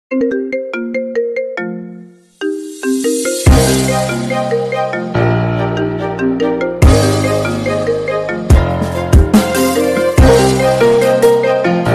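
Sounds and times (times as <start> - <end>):
Apple iPhone ringtone: 0.1 - 11.8.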